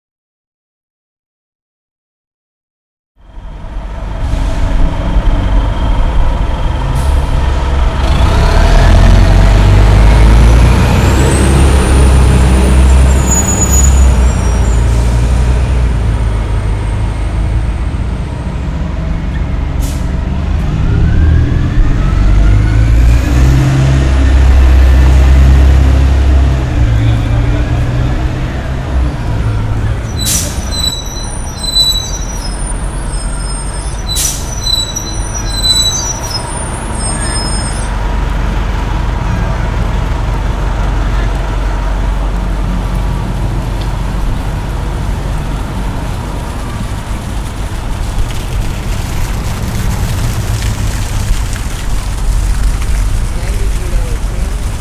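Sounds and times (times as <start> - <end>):
street noise: 3.2 - 54.7.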